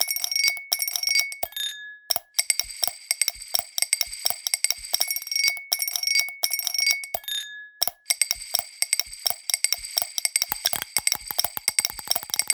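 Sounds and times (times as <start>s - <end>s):
clear ringing tones of glasses: 0.0s - 2.3s, 5.0s - 12.5s
tiny steel ball bouncing and rolling in glasses: 0.0s - 12.5s.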